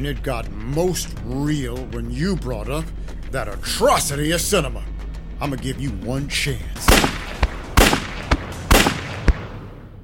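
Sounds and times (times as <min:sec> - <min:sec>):
speech: 0:00.0 - 0:07.1
gunshots: 0:06.8 - 0:09.8.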